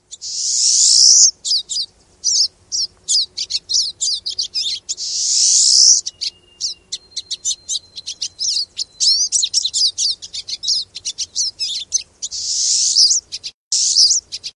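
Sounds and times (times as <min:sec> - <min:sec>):
pine siskin calling: 0:00.1 - 0:14.5.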